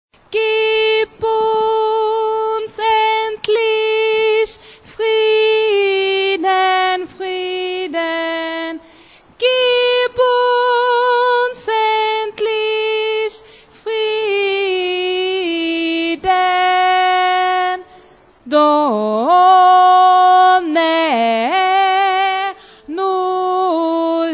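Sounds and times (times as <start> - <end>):
soprano voice: 0.2 - 24.3.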